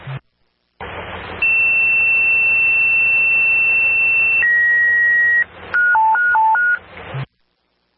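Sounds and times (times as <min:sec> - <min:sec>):
hissy static-filled radio channel: 0:00.0 - 0:04.4, 0:06.8 - 0:07.9
fire dispatch paging tones over radio: 0:01.4 - 0:06.8.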